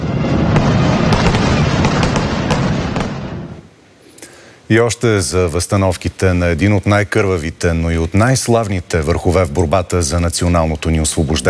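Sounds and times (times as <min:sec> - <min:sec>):
fireworks barrage crackling and booming: 0:00.0 - 0:03.7
speech: 0:04.7 - 0:11.4.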